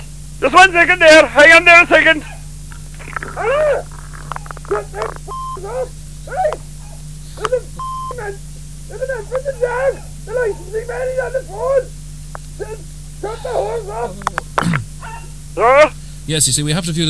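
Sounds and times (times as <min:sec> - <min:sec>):
speech: 0:00.4 - 0:02.3, 0:03.4 - 0:03.9, 0:04.7 - 0:06.6, 0:07.4 - 0:12.0, 0:12.6 - 0:14.4, 0:15.6 - 0:17.0
dog whimpering and whining: 0:04.7 - 0:11.9, 0:12.6 - 0:14.4, 0:15.0 - 0:16.0
brief electronic beeps: 0:05.3 - 0:05.6, 0:07.8 - 0:08.2.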